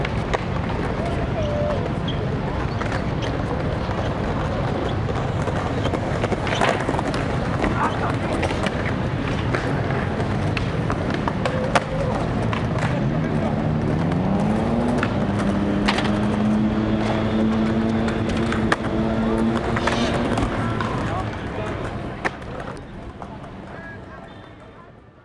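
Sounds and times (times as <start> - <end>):
crowd murmur on a busy Paris street: 0.0 - 25.2
traffic rumbling on a Paris street: 0.0 - 25.2.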